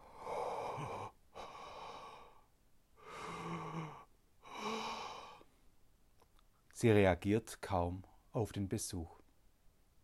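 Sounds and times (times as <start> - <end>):
heavy labored breathing of feverish woman: 0.0 - 5.6
speech: 6.8 - 9.2.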